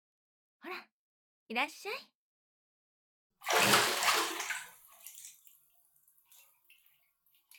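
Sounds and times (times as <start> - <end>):
speech: 1.5 - 2.2
water pouring and splashing while washing a child's hair at bath time: 3.4 - 7.5.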